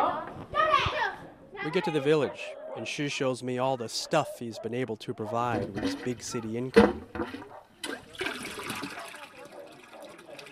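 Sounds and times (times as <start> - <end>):
speech: 1.6 - 7.5
automatic well pump drawing water: 5.6 - 10.5.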